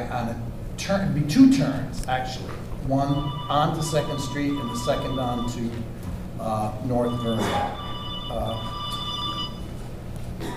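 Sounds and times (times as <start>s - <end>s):
low noisy background: 0.0s - 10.5s
speech: 0.2s - 8.8s
cell phone ringing: 3.0s - 5.8s, 6.8s - 9.7s.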